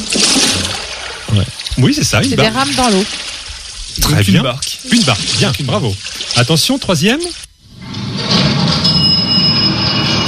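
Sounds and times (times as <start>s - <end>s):
speech: 1.4s - 3.4s, 4.0s - 7.4s
elevator running with mechanical rumble and high-pitched whine: 7.8s - 10.2s.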